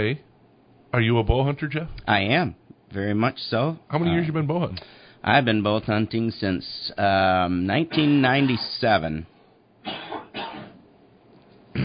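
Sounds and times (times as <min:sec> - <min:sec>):
speech: 0:00.0 - 0:00.3, 0:00.9 - 0:09.3
throat clearing from someone with a frog in the throat: 0:09.8 - 0:10.8.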